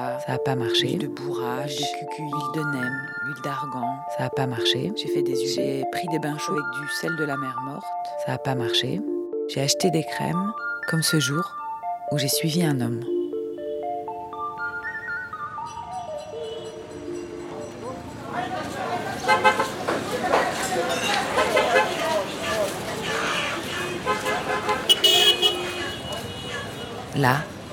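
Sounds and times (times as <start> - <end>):
speech: 0.2 - 13.2, 27.2 - 27.5
busy street traffic in the historic centre of Cairo on a very hot day: 13.0 - 27.7
car horns tooting: 16.3 - 17.1, 19.0 - 27.1
indistinct voices: 17.2 - 27.7.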